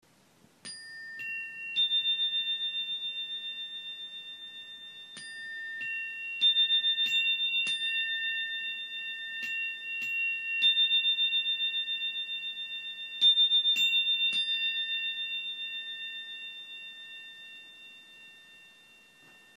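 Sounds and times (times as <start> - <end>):
energy chimes: 0.8 - 19.5.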